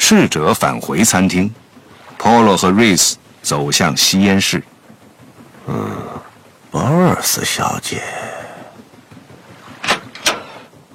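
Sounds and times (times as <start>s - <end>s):
speech: 0.1s - 4.8s, 5.7s - 6.0s, 6.7s - 8.2s
door being shut in a smoking room: 9.8s - 10.7s.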